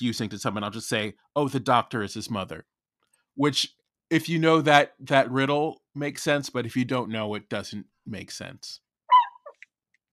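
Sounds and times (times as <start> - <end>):
speech: 0.0 - 2.8, 3.4 - 8.8
dog barking: 9.1 - 9.5
dog yipping: 9.1 - 9.6.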